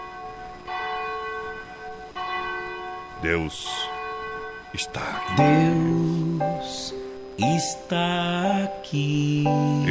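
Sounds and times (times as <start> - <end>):
cathedral bell tolling in Brazil: 0.0 - 7.8
speech: 3.2 - 3.9, 4.7 - 9.8.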